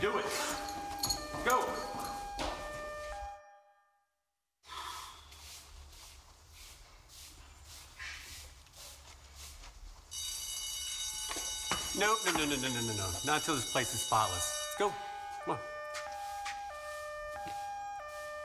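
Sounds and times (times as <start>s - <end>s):
shrill metallic alarm ringing: 0.0s - 3.9s, 10.1s - 18.4s
speech: 12.0s - 15.7s.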